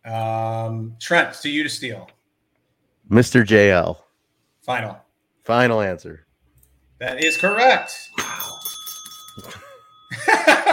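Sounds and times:
speech: 0.0 - 2.2, 3.1 - 4.0, 4.7 - 6.2, 7.0 - 8.6
hand bell ringing: 7.2 - 10.7.

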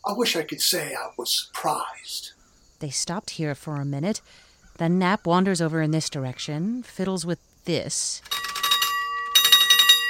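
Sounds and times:
speech: 0.1 - 8.4
small bell ringing: 8.2 - 10.0.

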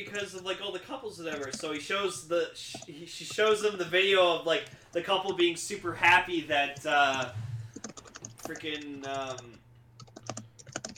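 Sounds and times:
speech: 0.0 - 7.5, 8.5 - 9.6
typing on a computer keyboard: 1.3 - 1.8, 2.7 - 3.4, 6.8 - 10.9.

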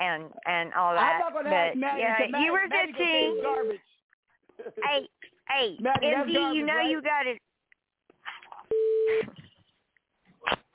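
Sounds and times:
speech: 0.2 - 4.0, 4.6 - 7.5, 8.7 - 9.4
electronic phone beep: 3.2 - 3.7, 8.7 - 9.3.

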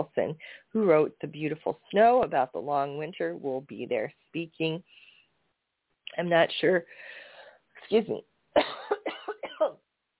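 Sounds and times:
speech: 0.0 - 5.0, 6.1 - 7.2, 7.9 - 8.9
person coughing: 8.6 - 9.8.

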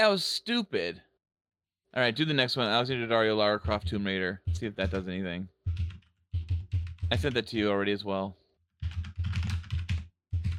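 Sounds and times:
speech: 0.0 - 1.1, 1.9 - 5.9, 7.1 - 8.4
typing on a computer keyboard: 5.7 - 7.4, 8.8 - 10.5.

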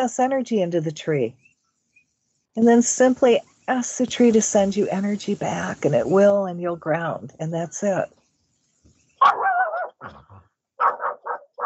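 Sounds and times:
speech: 0.0 - 1.5, 2.6 - 8.2, 9.2 - 10.2
dog howling: 9.2 - 10.0
dog barking: 9.2 - 10.1, 10.8 - 11.6.

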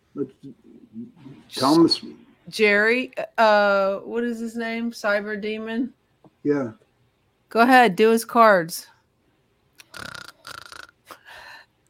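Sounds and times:
speech: 0.2 - 6.8, 7.5 - 8.9, 10.0 - 10.2
loud raspy snoring with rattling snorts: 9.9 - 11.0.

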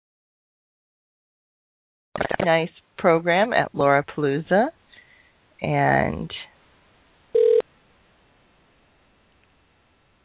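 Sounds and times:
speech: 2.2 - 4.8, 5.6 - 6.5
telephone call dialing tone: 7.4 - 7.6.

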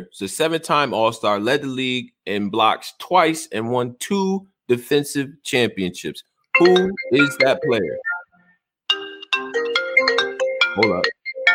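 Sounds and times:
speech: 0.0 - 8.1, 10.8 - 11.2
phone ringtone ringing: 6.6 - 11.5.

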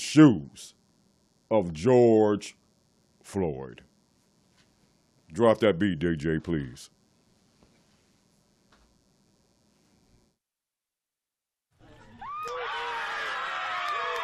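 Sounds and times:
speech: 0.1 - 0.8, 1.5 - 2.6, 3.3 - 3.9, 5.3 - 7.0
large crowd cheering with shouts and whoops outdoors: 11.8 - 14.2.

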